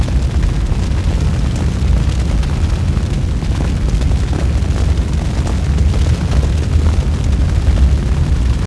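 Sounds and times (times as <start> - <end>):
large fire burning: 0.0 - 8.6.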